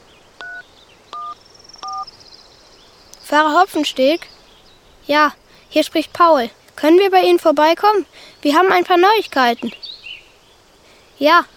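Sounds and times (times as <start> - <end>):
faint hiss: 0.0 - 11.5
mobile phone keypad two-toned dialing beeps: 0.4 - 2.1
speech: 3.3 - 4.4, 5.1 - 9.9, 11.2 - 11.5.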